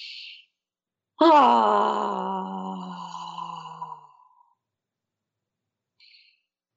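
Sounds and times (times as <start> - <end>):
person voicing a long ah on an exhale: 1.2 - 4.0.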